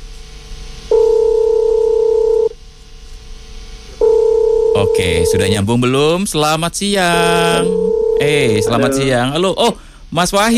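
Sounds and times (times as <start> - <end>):
low hum: 0.0 - 10.5
two-pitch telephone tone as a call is placed: 0.9 - 2.5, 4.0 - 5.6, 7.2 - 9.2
speech: 5.0 - 10.5.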